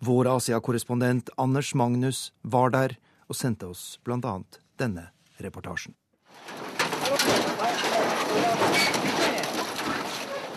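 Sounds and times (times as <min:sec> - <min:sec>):
speech: 0:00.0 - 0:07.7
burnt metal sheets scraping and clattering as they are lifted: 0:06.3 - 0:10.5.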